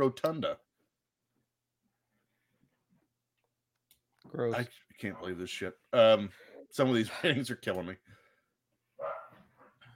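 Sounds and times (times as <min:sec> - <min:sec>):
speech: 0:00.0 - 0:00.6, 0:04.3 - 0:08.2
dog barking: 0:09.0 - 0:09.8.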